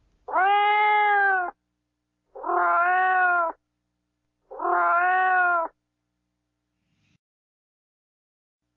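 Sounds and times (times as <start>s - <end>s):
cat meowing: 0.3s - 1.6s, 2.3s - 3.6s, 4.5s - 5.8s.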